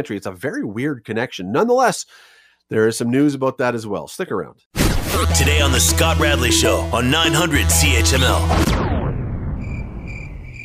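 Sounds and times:
speech: 0:00.0 - 0:09.0
crickets chirping in a field: 0:09.6 - 0:10.6.

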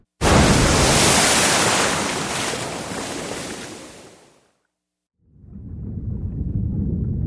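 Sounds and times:
burning aircraft crashing into lake water during a lightning storm: 0:00.2 - 0:03.8
low underwater rumble: 0:05.3 - 0:07.2.

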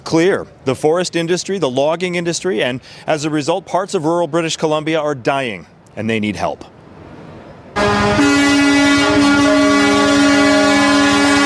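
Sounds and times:
speech: 0:00.1 - 0:06.8
air horns of logging trucks blaring in Vancouver British Columbia protest: 0:07.8 - 0:11.4.

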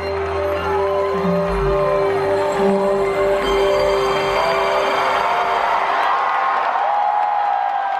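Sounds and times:
large crowd clapping: 0:00.0 - 0:07.9
crowd whoops and shouts: 0:04.4 - 0:07.9.

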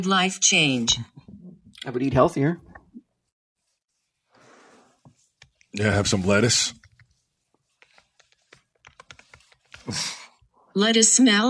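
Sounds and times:
speech: 0:00.0 - 0:01.1, 0:01.8 - 0:02.7, 0:05.8 - 0:06.8, 0:09.9 - 0:10.2, 0:10.8 - 0:11.4
fingers typing on a computer keyboard: 0:07.8 - 0:09.9.

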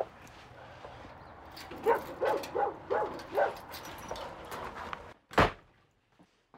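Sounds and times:
key rattling in a front door lock: 0:01.5 - 0:04.7
dog yipping: 0:01.8 - 0:03.6.

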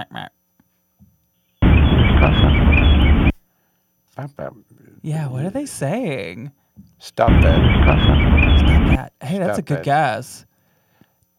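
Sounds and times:
birds chirping: 0:01.3 - 0:03.4, 0:07.3 - 0:09.0
speech: 0:04.2 - 0:10.5.

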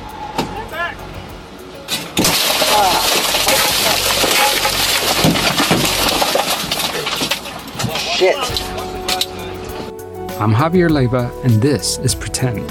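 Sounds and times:
crunching, tinkling glass fragments scattering: 0:01.9 - 0:09.4
truck window glass being smashed: 0:01.9 - 0:09.4
voices: 0:06.9 - 0:09.9
speech: 0:08.2 - 0:08.8, 0:10.4 - 0:12.6.

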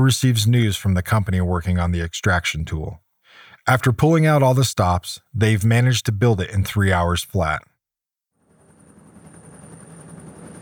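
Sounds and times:
speech: 0:00.0 - 0:03.0, 0:03.6 - 0:07.7
helicopter engine roar: 0:08.5 - 0:10.6.

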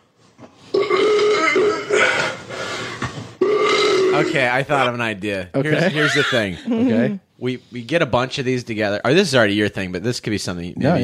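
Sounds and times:
loud fart: 0:00.7 - 0:02.4, 0:03.0 - 0:04.5
speech: 0:04.2 - 0:11.0
laughter: 0:05.6 - 0:06.9.

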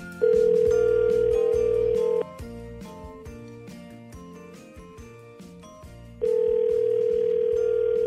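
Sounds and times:
music: 0:00.0 - 0:08.0
telephone ringback tones on the line: 0:00.2 - 0:02.2, 0:06.2 - 0:08.0.

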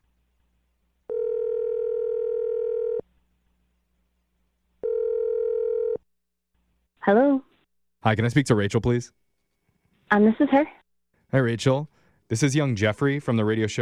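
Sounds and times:
telephone ringback tones: 0:01.1 - 0:03.0, 0:04.8 - 0:06.0
speech: 0:07.1 - 0:07.5, 0:08.0 - 0:09.2, 0:10.1 - 0:13.7.

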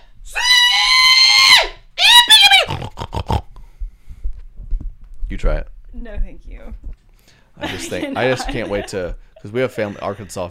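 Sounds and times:
person yipping: 0:00.3 - 0:02.9
person doing a loud high pig call: 0:00.3 - 0:03.6
speech: 0:05.4 - 0:06.9, 0:07.6 - 0:10.5
laughter: 0:07.6 - 0:10.5.

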